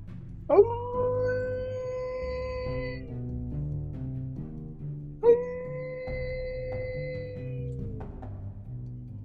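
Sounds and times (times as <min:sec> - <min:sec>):
soft low musical backing: 0:00.0 - 0:09.2
man howling animal call with hands cupped to his mouth toward a forest: 0:00.5 - 0:03.0, 0:05.2 - 0:08.0.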